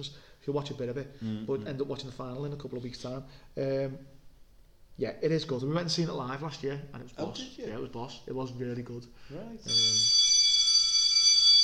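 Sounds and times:
speech: 0:00.0 - 0:04.2, 0:05.0 - 0:10.2
loud high-pitched bell ringing: 0:09.7 - 0:11.6.

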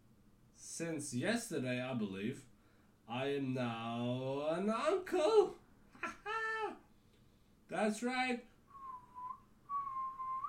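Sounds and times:
speech: 0:00.8 - 0:02.5, 0:03.1 - 0:06.1, 0:07.7 - 0:08.5
person whistling a steady sustained tone with the mouth: 0:08.7 - 0:10.4.

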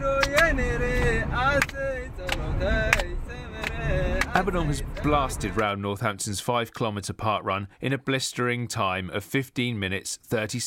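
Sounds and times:
steady low rumble of a moving car: 0:00.0 - 0:05.7
man singing a traditional song in a car: 0:00.0 - 0:05.8
speech: 0:04.4 - 0:10.6.

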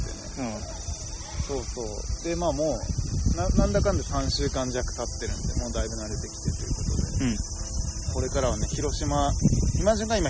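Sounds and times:
cicadas singing outdoors: 0:00.0 - 0:10.2
two people chatting: 0:00.0 - 0:10.2
speech: 0:01.5 - 0:07.6, 0:08.2 - 0:10.2.

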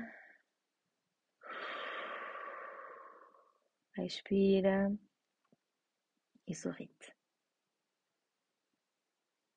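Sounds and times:
deep inhale through the nose: 0:01.4 - 0:03.6
speech: 0:04.0 - 0:05.1, 0:06.5 - 0:07.2.

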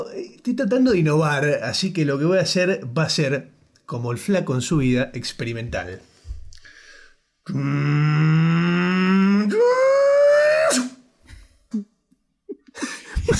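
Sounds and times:
speech: 0:00.0 - 0:06.1, 0:07.4 - 0:08.8, 0:10.7 - 0:10.9, 0:11.7 - 0:11.9, 0:12.8 - 0:13.3
soft breaths: 0:06.0 - 0:07.4
voice imitating a time machine with a buzzing hum: 0:07.5 - 0:09.6.

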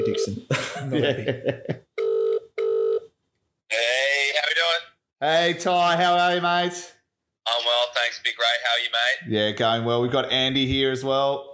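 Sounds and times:
voice on the telephone line: 0:00.0 - 0:00.4, 0:03.7 - 0:04.9, 0:07.5 - 0:09.3
speech: 0:00.0 - 0:01.9, 0:05.2 - 0:11.5
laughter: 0:00.5 - 0:01.9
electronic telephone dialing tones: 0:02.0 - 0:03.1.

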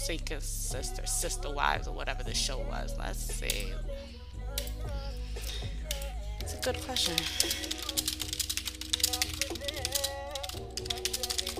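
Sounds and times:
speech: 0:00.0 - 0:05.8, 0:06.5 - 0:08.2
rapid typing on a computer keyboard: 0:05.9 - 0:11.5.

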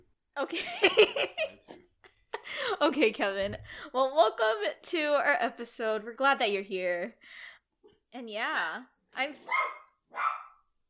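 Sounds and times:
speech: 0:00.4 - 0:01.6, 0:02.8 - 0:07.5, 0:08.1 - 0:10.4
dog barking: 0:09.4 - 0:10.7.

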